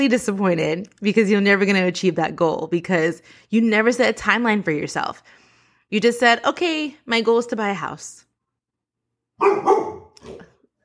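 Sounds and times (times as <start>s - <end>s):
speech: 0.0s - 8.2s, 9.4s - 9.8s
dog barking: 9.4s - 10.5s.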